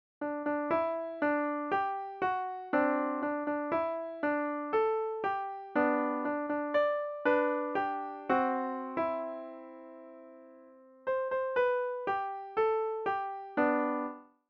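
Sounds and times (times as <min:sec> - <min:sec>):
easy piano music: 0:00.2 - 0:14.3.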